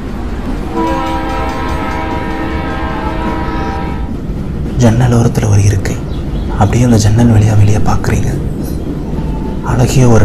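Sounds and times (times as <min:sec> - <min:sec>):
train rushing past at speed: 0:00.0 - 0:10.2
train horn sounding in a long sustained blast: 0:00.6 - 0:04.3
speech: 0:04.8 - 0:08.5, 0:09.6 - 0:10.2.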